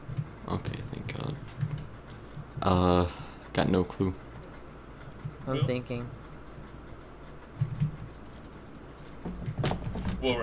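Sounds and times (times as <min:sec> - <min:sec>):
low room hum: 0:00.0 - 0:10.4
speech: 0:00.5 - 0:00.9, 0:02.6 - 0:04.2, 0:05.5 - 0:06.2, 0:10.2 - 0:10.4
typing on a keyboard: 0:07.6 - 0:09.3.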